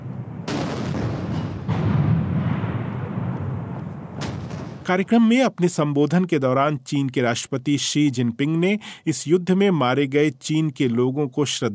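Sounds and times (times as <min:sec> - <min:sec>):
ceremonial cannon salute shots firing: 0:00.0 - 0:04.9
speech: 0:04.9 - 0:11.7.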